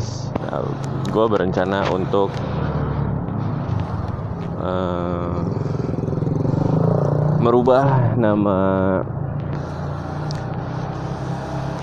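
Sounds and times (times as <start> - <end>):
motorcycle engine drone while riding: 0.0 - 11.8
speech: 0.5 - 2.7, 4.6 - 5.8, 7.4 - 9.2.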